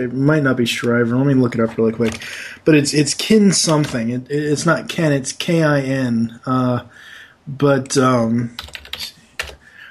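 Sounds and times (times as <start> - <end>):
speech: 0.0 - 9.1
typing on a computer keyboard: 1.6 - 2.2, 3.7 - 4.0, 8.6 - 9.6.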